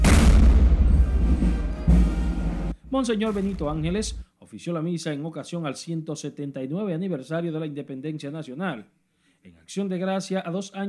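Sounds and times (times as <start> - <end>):
21-gun cannon salute firing as military honours: 0.0 - 2.3
speech: 3.0 - 10.8.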